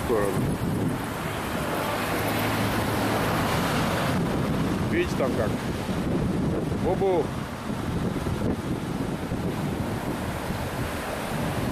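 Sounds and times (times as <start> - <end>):
fierce wind: 0.0 - 11.7
stormy surf with breaking waves and heavy spray: 0.0 - 11.7
speech: 0.1 - 1.2, 5.0 - 5.8, 6.8 - 7.4.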